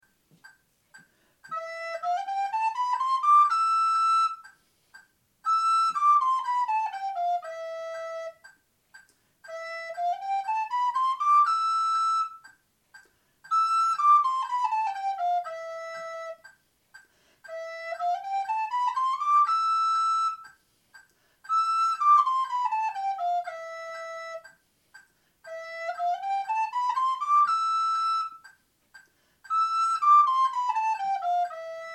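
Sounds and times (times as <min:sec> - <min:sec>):
flute playing a scale: 0:01.5 - 0:04.6, 0:05.4 - 0:08.6, 0:09.5 - 0:12.6, 0:13.5 - 0:16.6, 0:17.5 - 0:20.6, 0:21.5 - 0:24.6, 0:25.4 - 0:28.6, 0:29.5 - 0:31.9.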